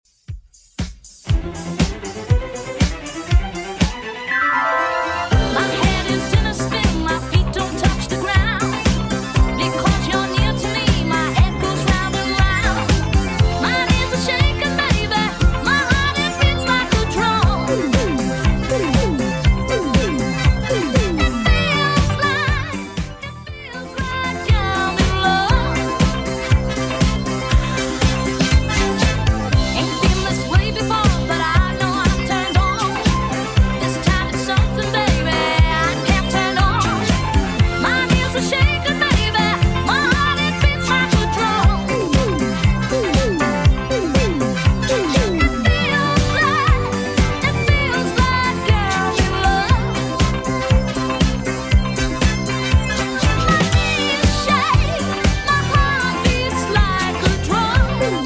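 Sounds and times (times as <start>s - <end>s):
80s-style Redrum drum machine beat: 0.1s - 4.2s, 5.3s - 58.2s.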